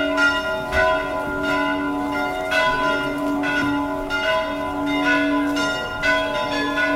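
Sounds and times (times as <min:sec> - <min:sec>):
monastery church bell ringing: 0:00.0 - 0:06.9.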